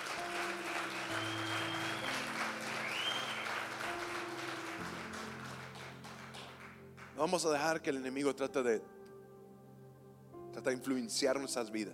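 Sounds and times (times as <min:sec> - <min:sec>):
audience applauding: 0:00.0 - 0:07.2
sustained low keyboard chords: 0:00.0 - 0:11.9
speech: 0:07.2 - 0:09.0, 0:10.6 - 0:11.9.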